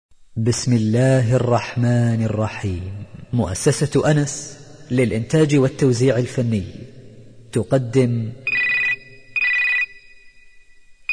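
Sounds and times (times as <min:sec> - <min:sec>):
speech: 0:00.4 - 0:06.9, 0:07.5 - 0:08.5
telephone ringing with a bright electronic trill: 0:08.5 - 0:10.5.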